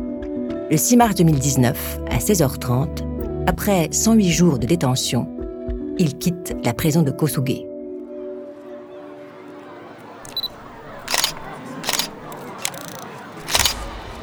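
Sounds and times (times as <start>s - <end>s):
speech: 0.7s - 5.4s, 6.0s - 7.7s
camera shutter firing in rapid burst: 10.2s - 14.2s.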